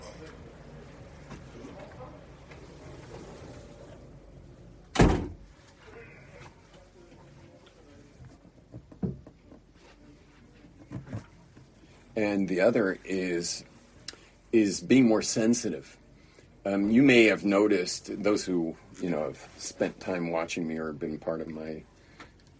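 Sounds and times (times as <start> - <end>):
room noise: 0.0 - 22.5
door thudding shut: 4.9 - 5.4
soft knocks and handling sounds: 5.5 - 11.9
speech: 12.2 - 13.7, 14.5 - 16.0, 16.6 - 21.9.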